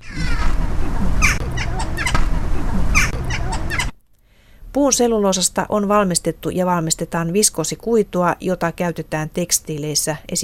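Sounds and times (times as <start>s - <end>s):
jackdaw calls: 0.0s - 4.0s
steady hum: 0.0s - 10.4s
speech: 4.8s - 10.4s.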